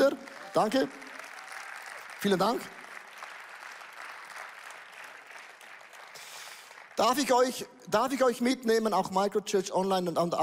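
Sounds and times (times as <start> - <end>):
speech: 0.0 - 1.0, 2.2 - 2.8, 7.0 - 10.4
audience applause: 0.0 - 7.5.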